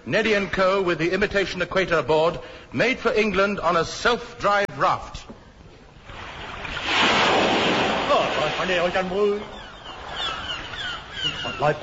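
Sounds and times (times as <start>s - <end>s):
speech: 0.0s - 5.4s, 8.6s - 9.6s, 11.2s - 11.8s
ocean waves rushing in mid ocean: 6.2s - 10.4s.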